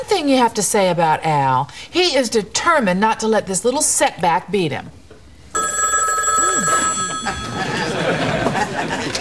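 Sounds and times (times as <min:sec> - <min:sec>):
speech: 0:00.2 - 0:05.0
telephone ringing with an electronic trill: 0:05.5 - 0:08.5
laughter: 0:06.5 - 0:09.1.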